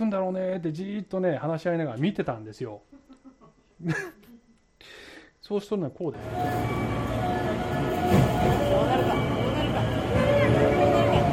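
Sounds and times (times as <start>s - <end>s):
speech: 0.1s - 3.0s, 3.8s - 4.2s, 4.8s - 7.0s
laughter: 2.9s - 4.5s, 8.7s - 11.3s
train rolling into station platform in Osaka: 6.2s - 11.3s
crowd murmuring on station platform in Osaka: 7.0s - 11.3s.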